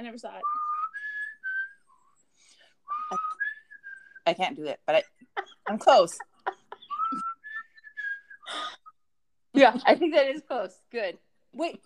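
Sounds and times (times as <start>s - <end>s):
speech: 0.0s - 0.7s, 4.3s - 6.3s, 9.6s - 11.8s
person whistling a short four-note tune: 0.4s - 4.2s, 6.8s - 9.0s.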